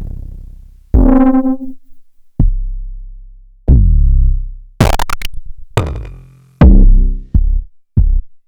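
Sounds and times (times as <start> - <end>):
kick drum: 1.0 - 2.7, 3.7 - 8.4.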